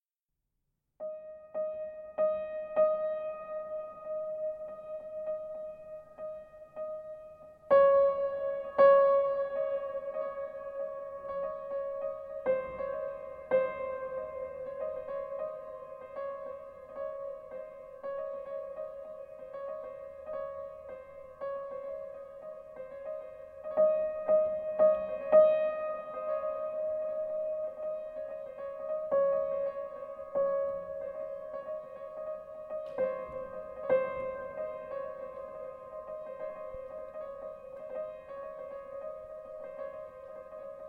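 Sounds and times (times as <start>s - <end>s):
piano: 1.0s - 40.8s.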